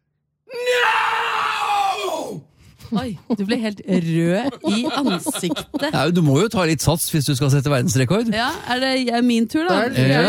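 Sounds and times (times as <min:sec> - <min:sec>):
person screaming as loudly as possible into a decibel meter: 0:00.5 - 0:02.5
speech: 0:02.9 - 0:10.2
laughter: 0:04.3 - 0:06.3.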